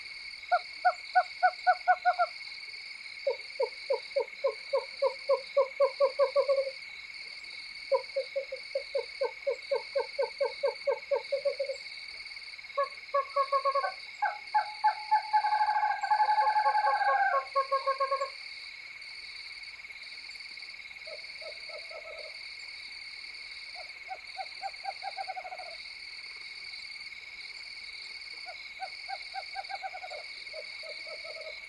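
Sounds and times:
night insects: 0.0s - 31.6s
western screech owl pair calling together with bouncing trills: 3.3s - 6.7s, 7.9s - 11.8s, 12.8s - 18.4s, 21.1s - 22.4s, 24.1s - 25.8s, 28.8s - 31.6s.

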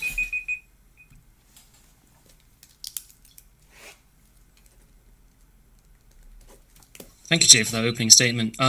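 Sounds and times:
debate timer alarm beeping: 0.0s - 1.1s
speech: 7.3s - 8.6s.

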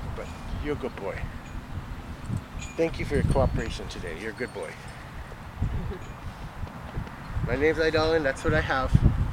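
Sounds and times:
speech: 0.2s - 1.4s, 2.3s - 4.9s, 5.9s - 6.2s, 7.5s - 9.1s
horse hooves clip-clopping: 6.2s - 7.2s.

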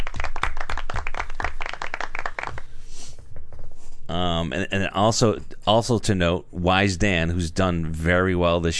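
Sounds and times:
soft golf clap: 0.0s - 2.7s
speech: 4.1s - 8.7s.

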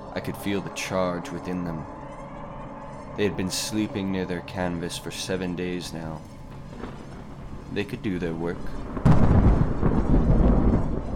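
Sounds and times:
speech: 0.2s - 2.0s, 3.2s - 7.0s, 7.7s - 8.8s
deep rolling rumble of thunder: 6.3s - 11.1s.

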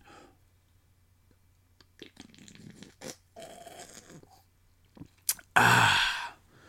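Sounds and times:
slurping gulps and swallows of bitter beer: 1.8s - 5.5s.

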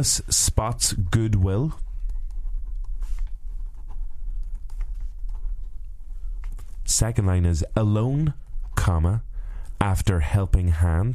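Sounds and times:
speech: 0.0s - 1.9s, 6.9s - 11.1s
low rumble: 0.0s - 11.1s
pen scribbling on paper: 2.2s - 5.7s.

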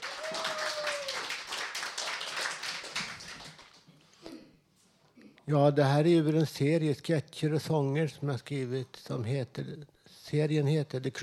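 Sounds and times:
small crowd applauding to welcome a performer: 0.0s - 3.9s
speech: 5.5s - 11.2s.

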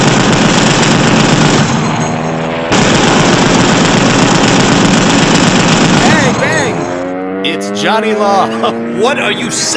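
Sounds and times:
rapid gunfire shooting at the enemy in a battle: 0.0s - 2.1s, 2.7s - 6.7s
speech: 7.8s - 9.7s.

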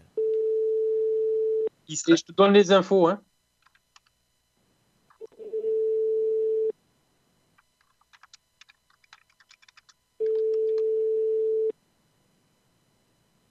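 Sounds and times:
ringback tones from an outgoing phone call: 0.2s - 1.7s, 5.4s - 6.7s, 10.2s - 11.7s
speech: 1.9s - 3.3s.

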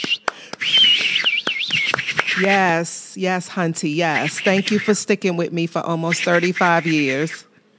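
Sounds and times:
sharp percussive taps or claps: 0.0s - 2.4s
person trying to whistle: 0.0s - 2.6s, 4.2s - 4.9s
speech: 2.4s - 7.5s.

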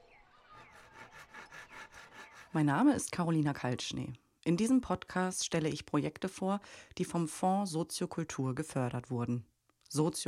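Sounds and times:
children and teenagers sawing wood by hand in a large garden: 0.7s - 2.6s
speech: 2.5s - 10.2s.

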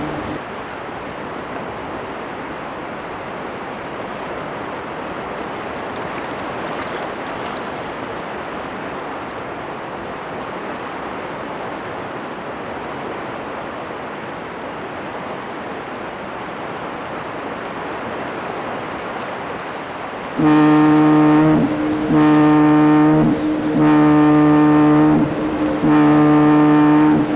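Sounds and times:
loud deep buzzing foghorn blasts: 0.0s - 0.4s, 20.4s - 27.3s
sea surf at night: 0.0s - 27.3s.

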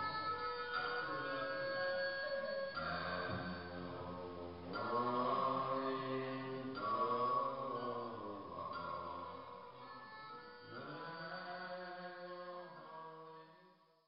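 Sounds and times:
repeating mantras playing from small Buddha boxes in a mountaintop temple: 0.0s - 13.9s.

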